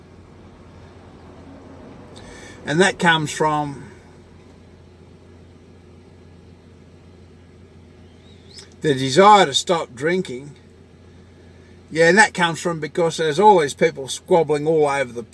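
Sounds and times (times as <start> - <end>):
large truck rumbling by: 0.0 - 4.4
speech: 2.6 - 3.9, 8.8 - 10.6, 11.9 - 15.3.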